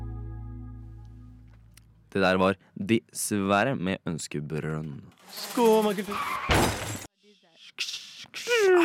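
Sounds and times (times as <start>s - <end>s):
speech: 2.1s - 7.0s
smashing crash: 5.3s - 7.1s.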